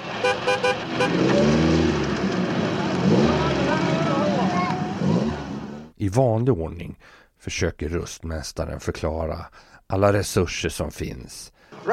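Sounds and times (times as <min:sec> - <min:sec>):
powerful sports car engine revving: 0:00.2 - 0:05.9
speech: 0:06.1 - 0:11.9.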